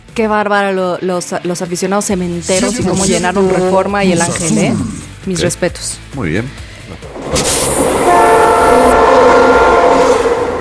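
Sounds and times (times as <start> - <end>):
speech: 0.2 - 8.1
rumble of the rolling train: 6.8 - 10.6
locomotive horn blowing: 7.7 - 10.6.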